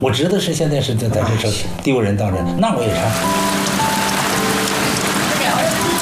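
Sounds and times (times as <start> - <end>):
speech: 0.0 - 3.6
heavy rain pattering on a hard surface: 3.0 - 6.0.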